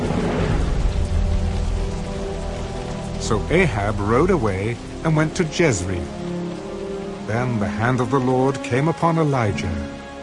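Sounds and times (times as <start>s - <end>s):
thunder rumbling: 0.0s - 7.2s
wind gusts: 0.0s - 7.6s
heavy rain: 0.0s - 10.2s
speech: 3.3s - 6.2s, 7.3s - 10.0s.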